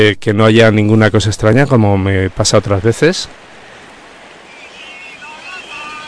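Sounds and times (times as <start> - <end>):
speech: 0.0 - 3.6
ocean surf rushing: 0.8 - 6.0
faint whistling tones: 4.4 - 6.0.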